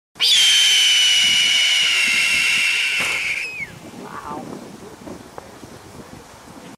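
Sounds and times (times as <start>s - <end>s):
red-tailed hawk screaming: 0.2s - 4.5s.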